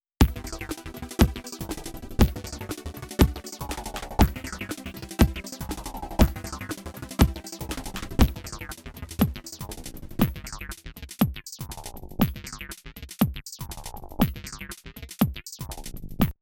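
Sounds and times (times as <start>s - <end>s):
bubbling tremolo: 0.2s - 10.8s.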